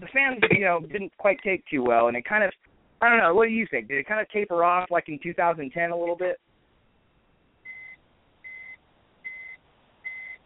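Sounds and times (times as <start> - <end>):
speech: 0.0 - 6.5
quiet hiss: 0.0 - 10.4
electronic car warning beeps: 7.7 - 10.4.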